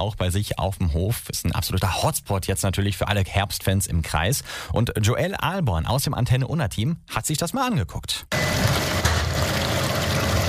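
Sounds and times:
speech: 0:00.0 - 0:09.6
rotating brush machine washing freshly harvested pumpkins under running water: 0:08.4 - 0:10.4.

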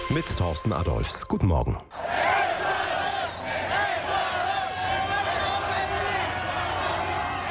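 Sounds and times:
speech: 0:00.1 - 0:02.1
Ecuador football fans shouting and chanting celebrating a victory at night: 0:01.9 - 0:07.4.

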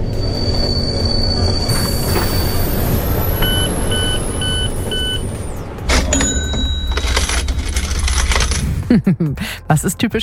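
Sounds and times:
train brakes screeching: 0:00.0 - 0:03.6
train door-warning beep sequence: 0:00.0 - 0:07.4
train rumbling: 0:00.0 - 0:08.9
speech: 0:09.7 - 0:10.2.

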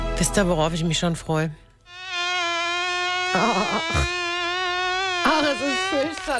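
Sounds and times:
speech: 0:00.2 - 0:02.0, 0:03.3 - 0:04.2, 0:05.3 - 0:06.3
swarm of mosquitoes whining at sundown: 0:01.8 - 0:06.3.

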